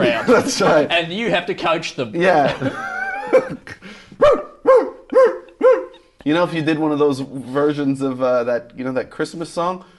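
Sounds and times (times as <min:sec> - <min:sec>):
laughter: 0:00.0 - 0:00.9, 0:02.2 - 0:04.0
speech: 0:00.1 - 0:04.5, 0:06.3 - 0:09.9
dog barking: 0:04.2 - 0:06.0.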